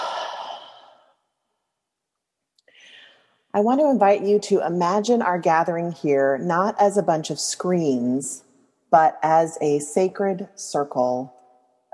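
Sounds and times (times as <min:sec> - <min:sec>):
deep breath with long sighing exhale: 0:00.0 - 0:01.1
faint breath: 0:00.0 - 0:01.1, 0:02.7 - 0:03.4
speech: 0:03.5 - 0:11.4.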